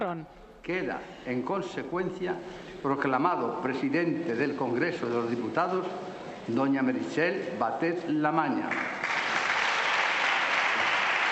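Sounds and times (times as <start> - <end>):
speech: 0.0 - 9.0
applause in a parliament chamber: 8.7 - 11.3.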